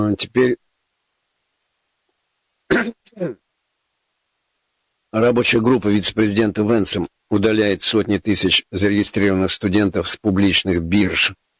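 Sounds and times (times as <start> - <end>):
speech: 0.0 - 0.6, 2.7 - 3.4, 5.1 - 11.4
dry raspy coughing: 2.7 - 3.4
throat clearing: 2.7 - 3.4.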